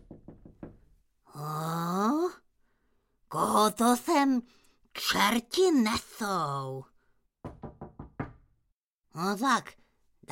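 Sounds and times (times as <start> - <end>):
knocking on a door: 0.0 - 0.9, 7.4 - 8.6
speech: 3.4 - 6.9, 9.2 - 10.3.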